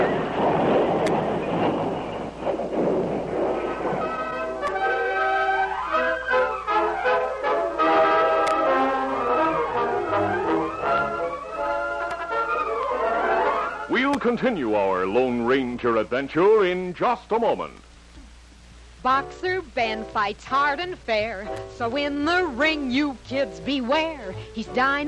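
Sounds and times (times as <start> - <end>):
continuing noise: 0.0 - 14.8
stagecoach crashing: 0.0 - 15.8
speech: 14.3 - 17.9, 19.0 - 25.0.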